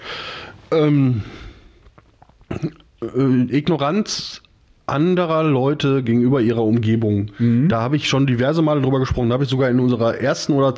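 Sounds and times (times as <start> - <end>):
speech: 0.7 - 1.4, 2.6 - 10.7
loud burp: 2.5 - 3.2.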